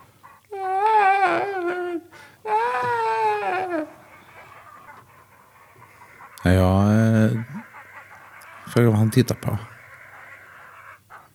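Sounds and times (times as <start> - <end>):
child sobbing and crying desperately: 0.5 - 4.1
speech: 6.4 - 6.9, 8.7 - 9.8.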